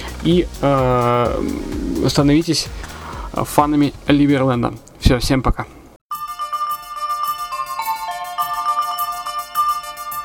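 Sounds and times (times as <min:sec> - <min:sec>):
speech: 0:00.2 - 0:05.8
pop song instrumental intro: 0:00.6 - 0:03.4, 0:06.1 - 0:10.2.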